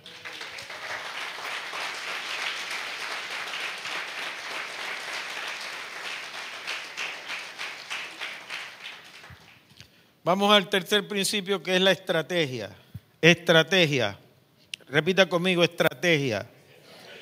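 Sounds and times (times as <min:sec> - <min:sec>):
church audience applauding: 0:00.0 - 0:09.8
speech: 0:10.3 - 0:14.2, 0:14.9 - 0:16.6.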